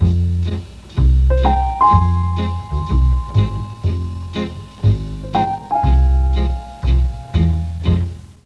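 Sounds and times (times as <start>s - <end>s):
Mellotron note G#1: 1.3s - 7.8s.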